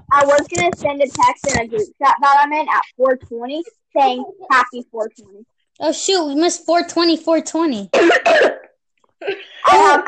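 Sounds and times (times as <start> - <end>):
speech: 0.2 - 8.6, 9.2 - 10.0
rough throaty cough-like burst: 7.9 - 9.4
person coughing: 7.9 - 10.0.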